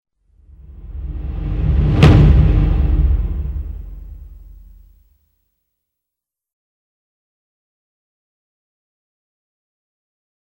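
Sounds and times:
alarm accent: 0.6 - 4.6.

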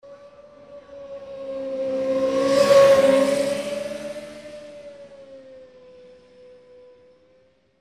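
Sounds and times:
vehicle passing by: 0.0 - 6.2.

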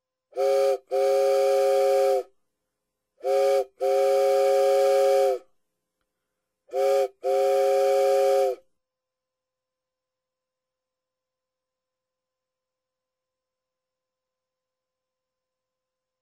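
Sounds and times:
steamship horn: 0.4 - 2.3, 3.2 - 5.4, 6.7 - 8.6.

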